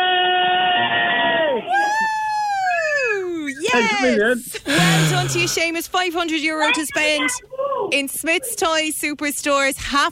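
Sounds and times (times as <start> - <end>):
family with twin children shouting and cheering after winning a toy shopping spree: 0.0 - 4.4, 6.4 - 8.6
speech: 3.8 - 10.1.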